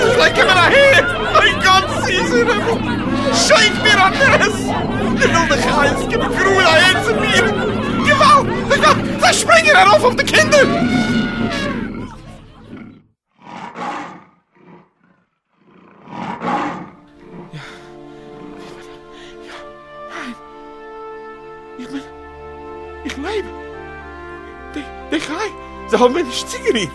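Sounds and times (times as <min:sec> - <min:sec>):
laughter: 0:00.0 - 0:12.9, 0:17.5 - 0:20.4, 0:21.8 - 0:22.2, 0:22.9 - 0:26.9
tiger roaring: 0:00.0 - 0:19.0
speech: 0:09.3 - 0:11.6, 0:26.0 - 0:26.9.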